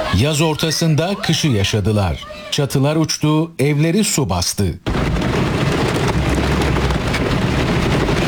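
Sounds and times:
speech: 0.2s - 4.9s
heavy rain and hail pounding down: 4.9s - 8.2s.

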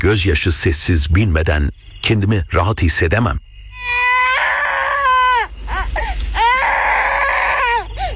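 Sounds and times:
speech: 0.0s - 3.5s
young child wailing loudly: 3.8s - 8.1s
child's short gasping sobs: 5.7s - 8.1s.

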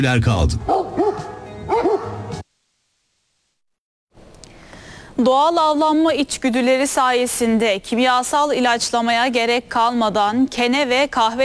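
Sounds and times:
speech: 0.0s - 0.8s, 5.2s - 11.4s
dogs barking at two bears: 0.6s - 2.4s.

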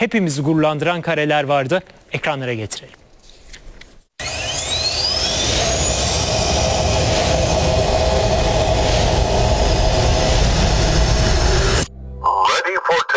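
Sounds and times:
speech: 0.0s - 3.0s
high whining tones: 4.2s - 11.9s
jet trainer aircraft roaring on its first flight: 4.2s - 11.9s
scattered noises: 5.9s - 11.9s.

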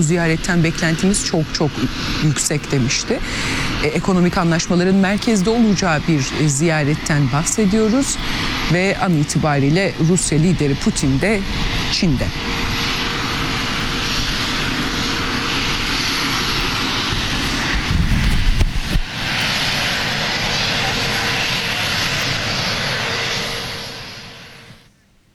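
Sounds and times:
speech: 0.0s - 12.7s
airplane engines roaring as plane arrives in China: 0.0s - 25.0s.

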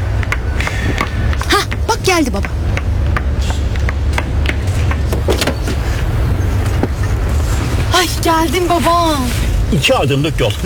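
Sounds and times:
car engine idling: 0.0s - 9.3s
speech: 2.2s - 2.6s, 8.2s - 10.6s
car door closing: 4.6s - 7.3s.

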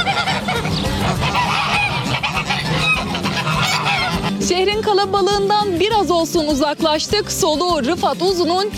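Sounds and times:
farm poultry, ducks or turkeys, honking and squawking: 0.0s - 5.4s
speech: 4.8s - 8.7s.

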